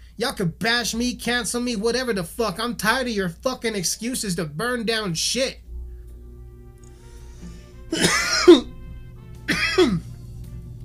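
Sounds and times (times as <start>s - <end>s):
speech: 0.2s - 5.6s
person coughing while taking a dab hit: 7.9s - 8.8s, 9.5s - 10.1s.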